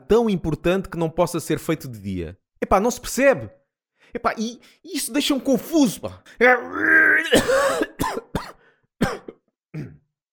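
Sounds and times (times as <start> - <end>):
speech: 0.1 - 9.2
drawn-out voiced groan: 6.4 - 7.5
short sharp dry coughs: 7.2 - 10.1.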